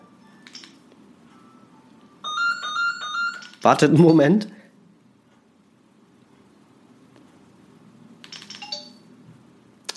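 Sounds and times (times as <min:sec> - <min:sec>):
low room hum: 0:00.0 - 0:09.9
phone electronic ringtone: 0:01.4 - 0:03.6, 0:08.5 - 0:09.1
speech: 0:03.6 - 0:04.6.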